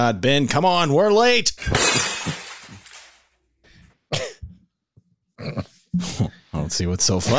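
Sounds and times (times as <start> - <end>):
speech: 0.0 - 2.4, 5.4 - 7.3
glass bottle crashing and shattering: 1.6 - 3.2
short throaty coughs or grunts: 4.1 - 4.6, 5.4 - 5.8.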